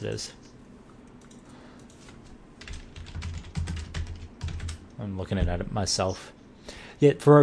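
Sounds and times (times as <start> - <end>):
speech: 0.0 - 0.5, 5.0 - 6.4, 7.0 - 7.4
fingers typing a search on a computer keyboard: 2.6 - 4.8.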